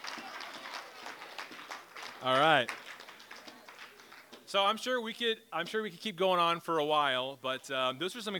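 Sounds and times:
small group of audience clapping: 0.0s - 4.5s
speech: 2.2s - 2.8s, 4.5s - 8.3s.

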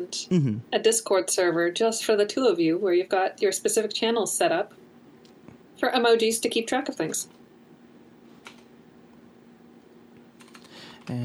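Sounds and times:
speech: 0.0s - 4.8s, 5.8s - 7.4s, 11.1s - 11.2s
steady low electrical hum: 0.0s - 11.2s
computer keyboard typing: 8.4s - 8.7s, 10.4s - 11.1s.

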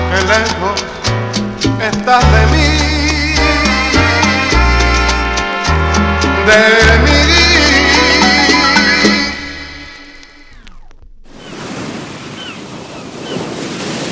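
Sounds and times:
song playing: 0.0s - 10.6s
speech: 0.3s - 1.2s, 1.8s - 3.0s, 6.5s - 7.1s
palm trees rustling in the wind: 11.2s - 14.1s.

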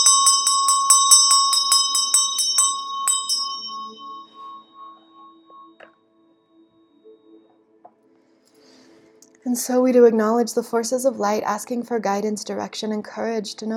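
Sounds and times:
small bell ringing: 0.0s - 5.9s
speech: 9.4s - 13.7s.

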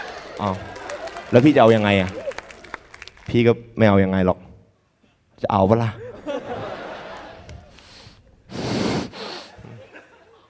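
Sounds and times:
speech: 0.4s - 2.2s, 3.3s - 4.5s, 5.4s - 6.0s
laughter: 6.0s - 8.0s, 9.2s - 10.4s
heavy wheezing breaths into the microphone: 7.8s - 9.9s.

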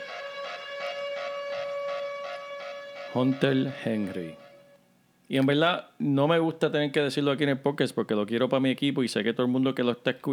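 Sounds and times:
pulsing electronic alarm tone: 0.0s - 4.8s
speech: 3.1s - 4.4s, 5.3s - 10.3s.

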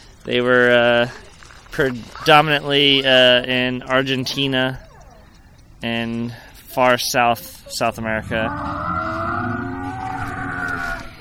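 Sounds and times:
speech: 0.2s - 1.2s, 1.8s - 4.8s, 5.8s - 9.1s
animatronic Carnotaurus dinosaur model roaring: 8.1s - 11.1s.

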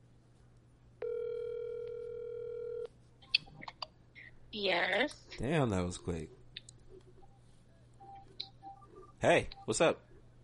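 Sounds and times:
telephone dial tone: 1.0s - 2.9s
speech: 4.5s - 6.4s, 9.2s - 10.1s.

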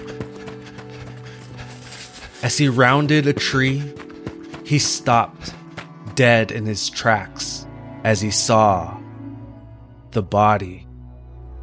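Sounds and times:
horse hooves thudding: 0.0s - 6.5s
quick running footsteps: 0.0s - 6.6s
speech: 2.4s - 4.0s, 4.7s - 5.6s, 6.2s - 9.0s, 10.1s - 10.8s.

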